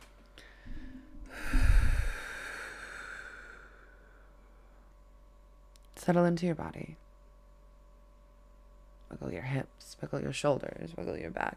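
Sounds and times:
deep noisy breath during a breathing exercise: 0.4 - 4.8
speech: 6.1 - 7.0, 9.1 - 11.5.

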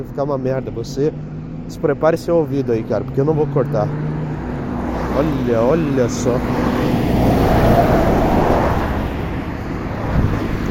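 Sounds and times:
speech: 0.0 - 4.1, 5.2 - 6.8
trucks and cars passing on the street: 0.0 - 10.6
wind buffeting the microphone: 6.0 - 10.6.

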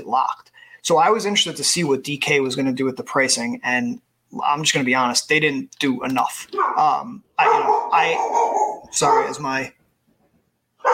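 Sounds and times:
speech: 0.0 - 9.8
dog barking and whining: 6.5 - 9.5.

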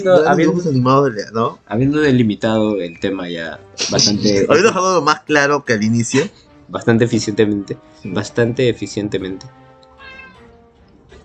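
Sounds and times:
speech: 0.0 - 9.6
laughter: 3.8 - 5.0, 6.0 - 6.4
cat meowing: 9.9 - 10.6.

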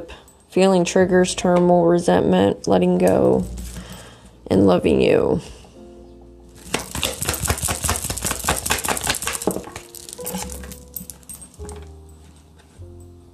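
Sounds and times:
speech: 0.0 - 3.6, 4.5 - 5.6
bright rapid metallic jingling: 6.6 - 12.3.

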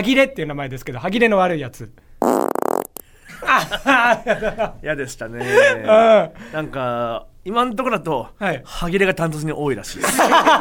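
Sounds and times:
speech: 0.0 - 2.4, 3.4 - 10.5
buzzy fart sound effect: 2.2 - 3.0
laughter: 3.3 - 4.8, 5.4 - 6.3, 10.0 - 10.5.

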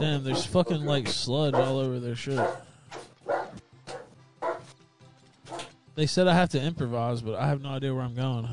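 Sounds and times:
speech: 0.0 - 2.7, 6.0 - 8.5
dog barking: 0.3 - 4.7, 5.5 - 5.7.

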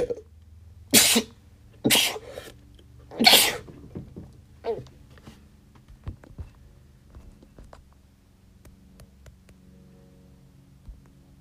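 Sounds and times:
steady low hum: 0.0 - 11.4
person sneezing: 1.0 - 2.5, 3.1 - 3.7.

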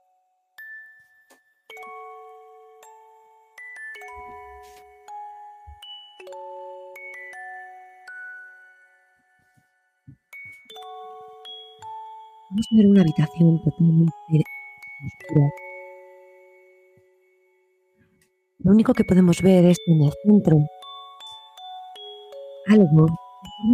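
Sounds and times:
gentle melodic tune of bell-like chiming notes: 0.0 - 23.7
speech: 12.5 - 15.6, 18.6 - 20.8, 22.7 - 23.7.

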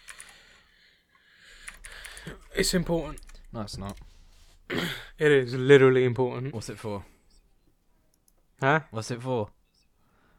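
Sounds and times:
typing on a computer keyboard: 0.0 - 0.4, 1.6 - 4.0
speech: 2.6 - 4.1, 4.7 - 7.1, 8.6 - 9.6.

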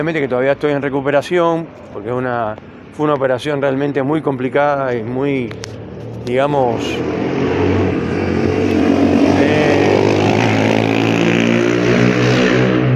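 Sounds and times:
speech: 0.0 - 7.3
street traffic rumble: 0.0 - 12.9
motor vehicle passing on a street: 4.8 - 12.9.

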